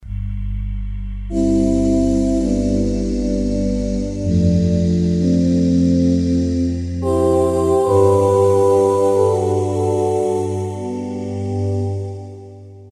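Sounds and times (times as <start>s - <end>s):
Korg M1 synthesizer voices: 1.0s - 12.9s.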